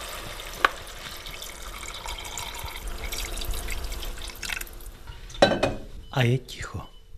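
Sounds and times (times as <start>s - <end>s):
cold water pouring into a cooking pot over diced pumpkin, potatoes and onion: 0.0s - 5.0s
speech: 6.2s - 6.9s.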